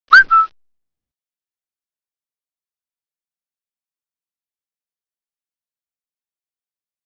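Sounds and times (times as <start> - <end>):
whistle notification: 0.1 - 0.5.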